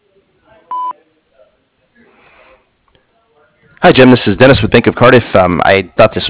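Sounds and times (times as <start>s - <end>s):
answering machine beep over a telephone line: 0.7s - 0.9s
speech: 3.8s - 6.2s.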